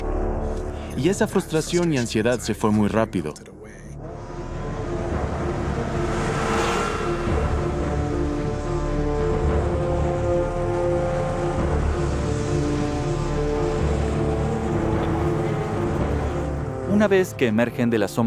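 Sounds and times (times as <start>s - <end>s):
speech: 1.0s - 3.6s, 17.0s - 18.2s
snowmobile engine starting and roaring: 4.1s - 17.1s.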